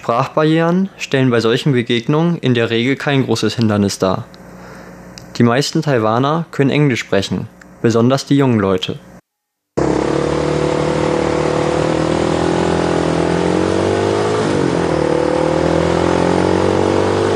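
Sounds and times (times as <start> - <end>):
speech: 0.0 - 4.4, 5.4 - 9.1
busy street traffic in Taiwan: 9.8 - 17.3
motor scooters revving in busy street traffic in Taiwan: 9.8 - 17.3.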